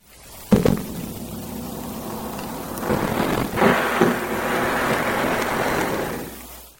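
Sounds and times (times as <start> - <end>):
harbor seal: 1.4 - 6.6.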